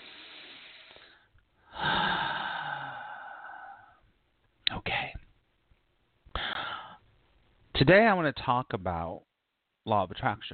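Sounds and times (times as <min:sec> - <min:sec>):
person taking a big deep breath: 0:00.0 - 0:04.0, 0:06.3 - 0:07.0
speech: 0:07.8 - 0:10.5.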